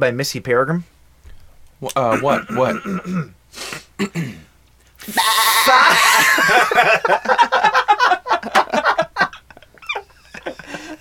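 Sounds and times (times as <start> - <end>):
speech: 0.0 - 1.0, 1.8 - 7.7
person imitating goat bleat: 5.0 - 6.3
laughter: 5.6 - 10.9.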